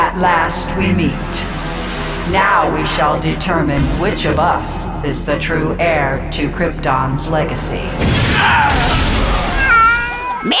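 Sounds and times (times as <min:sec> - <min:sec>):
speech: 0:00.2 - 0:01.6, 0:02.3 - 0:09.0
cat meowing: 0:09.5 - 0:10.5.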